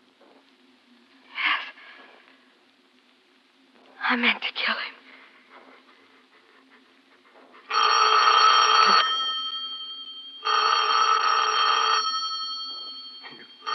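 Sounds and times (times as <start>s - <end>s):
speech: 4.1s - 4.9s
telephone bell ringing: 7.7s - 13.7s.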